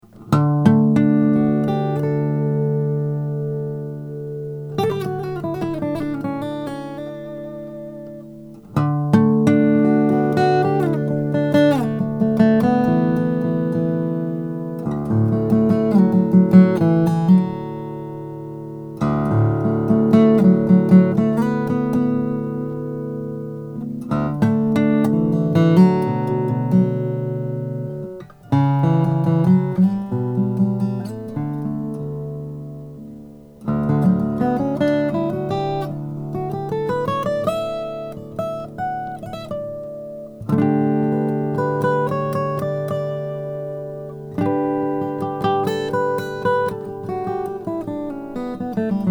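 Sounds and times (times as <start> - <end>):
Hewett OM Madagascar rosewood guitar: 0.0 - 49.1.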